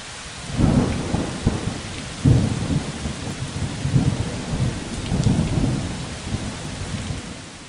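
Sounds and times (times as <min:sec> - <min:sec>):
dense steady heavy rain hissing in a thunderstorm: 0:00.0 - 0:07.6
deep thunder rumbling loud and close: 0:00.4 - 0:07.6.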